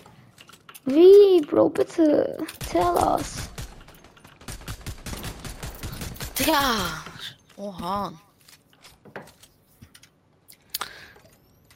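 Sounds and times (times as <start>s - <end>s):
speech: 0.8s - 3.5s, 6.4s - 8.2s
video game gunfire bursts: 2.6s - 7.1s.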